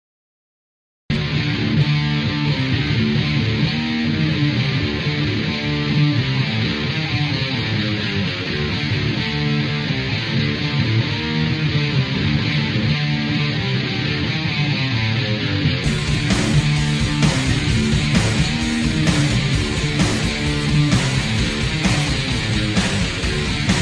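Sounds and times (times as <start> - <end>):
metal guitar: 1.1 - 23.8.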